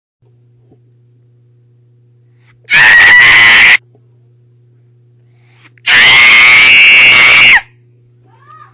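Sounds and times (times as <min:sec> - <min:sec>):
loud scream: 0:02.7 - 0:03.8, 0:05.8 - 0:07.7.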